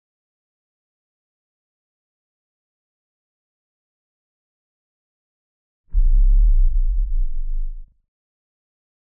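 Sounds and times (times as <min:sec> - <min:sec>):
LFE low-frequency rumble of giant floor panel assembling and lifting: 0:06.0 - 0:07.9.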